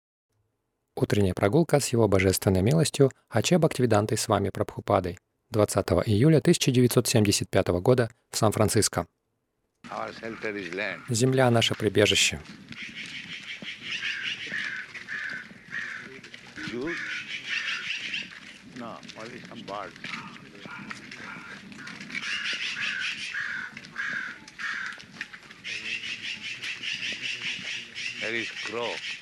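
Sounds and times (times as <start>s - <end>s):
outdoor noise: 0.3s - 29.2s
speech: 1.0s - 9.2s, 9.8s - 13.2s, 16.7s - 17.1s, 18.8s - 20.9s, 28.2s - 29.1s
crows cawing in loud harsh bursts: 9.8s - 29.2s.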